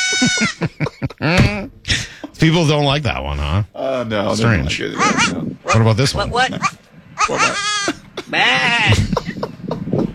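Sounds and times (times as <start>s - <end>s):
goat bleating: 0.0s - 0.5s, 4.9s - 9.0s
laughter: 0.0s - 2.6s, 4.5s - 10.1s
speech: 0.1s - 1.5s, 2.4s - 9.1s.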